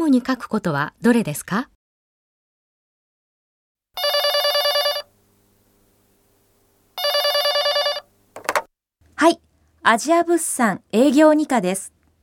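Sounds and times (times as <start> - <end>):
speech: 0.1 - 1.7, 9.2 - 12.0
telephone ringing with a trilling bell: 4.0 - 5.1, 7.0 - 8.1.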